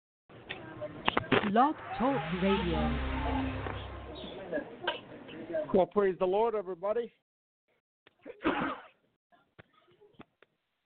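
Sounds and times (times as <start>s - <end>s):
speech: 1.5s - 3.6s, 5.6s - 7.2s
loud sneeze: 8.2s - 9.0s.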